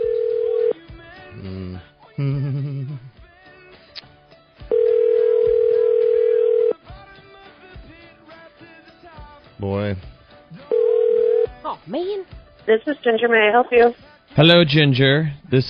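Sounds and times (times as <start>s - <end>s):
telephone dial tone: 0.0s - 0.7s, 4.7s - 6.8s, 10.7s - 11.5s
speech: 2.2s - 2.6s, 12.7s - 15.6s.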